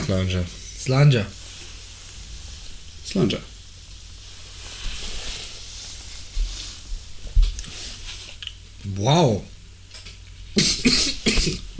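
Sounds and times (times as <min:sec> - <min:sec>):
speech: 0:00.1 - 0:01.4, 0:03.1 - 0:03.5, 0:08.9 - 0:09.5, 0:10.6 - 0:11.7
coughing after choking on inhaled whisky: 0:10.6 - 0:11.7.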